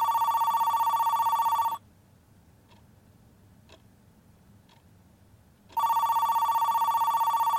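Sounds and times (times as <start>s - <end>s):
telephone ringing with long trilling rings: 0.0s - 1.8s, 5.8s - 7.5s.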